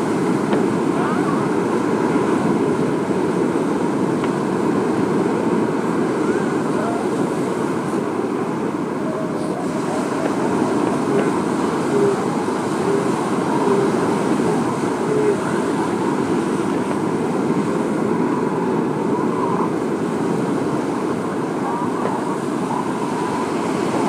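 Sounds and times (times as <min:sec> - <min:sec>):
washing surf-like hiss: 0:00.0 - 0:24.0
elephant seals bellowing and grunting during mating season: 0:09.0 - 0:16.3.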